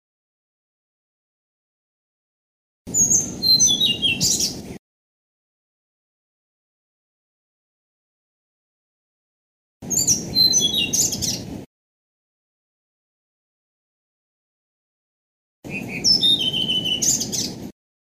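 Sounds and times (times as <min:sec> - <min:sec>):
blue-throated flycatcher singing: 0:02.9 - 0:04.6, 0:09.8 - 0:11.5, 0:15.7 - 0:17.6.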